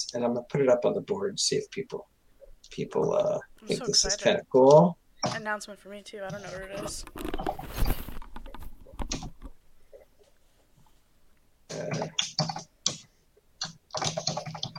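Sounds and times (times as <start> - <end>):
speech: 0.0 - 7.9, 11.8 - 12.4
computer keyboard typing: 13.6 - 14.7.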